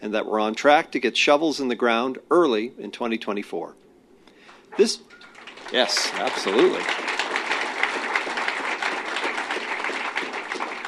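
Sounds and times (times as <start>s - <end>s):
speech: 0.0s - 3.8s, 4.7s - 7.1s
audience applause: 5.3s - 10.8s.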